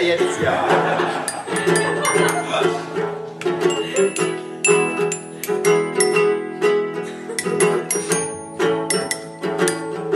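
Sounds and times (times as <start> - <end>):
speech: 0.0 - 1.8
laughter: 0.2 - 3.1, 3.7 - 4.4, 6.9 - 7.9
out of tune glockenspiel playing a running melody: 1.3 - 2.6, 3.6 - 10.0.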